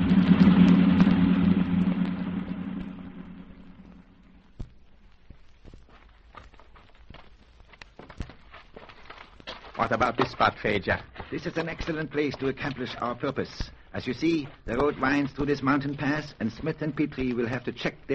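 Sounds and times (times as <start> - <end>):
car engine rumble driving fast on a winding mountain road: 0.0 - 4.6
speech: 9.8 - 18.1.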